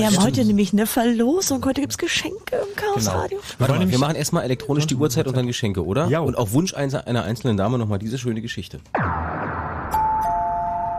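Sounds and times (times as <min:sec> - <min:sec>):
speech: 0:00.0 - 0:09.1
two-note electronic doorbell chime: 0:09.9 - 0:10.9.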